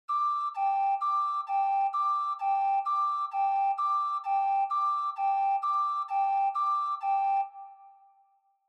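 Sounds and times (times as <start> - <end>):
high ambulance siren with fake reverb: 0.1 - 8.1.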